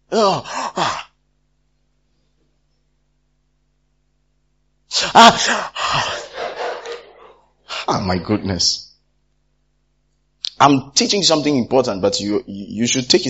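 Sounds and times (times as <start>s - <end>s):
speech: 0.1s - 0.9s, 5.2s - 6.2s, 7.9s - 8.9s, 10.6s - 13.2s
breathy yawn trailing into a sighing exhale: 0.1s - 1.1s, 5.0s - 6.2s
laughter: 5.2s - 8.5s.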